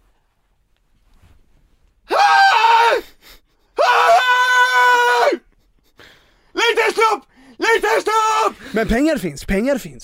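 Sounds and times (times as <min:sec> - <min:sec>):
voice imitating a man screaming: 0:02.1 - 0:03.1, 0:03.8 - 0:05.4, 0:06.6 - 0:08.6
speech: 0:08.8 - 0:10.0.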